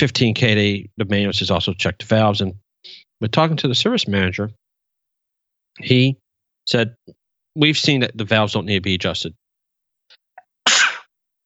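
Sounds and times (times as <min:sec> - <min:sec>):
speech: 0:00.0 - 0:04.6, 0:05.8 - 0:09.4
person sneezing: 0:10.6 - 0:11.1.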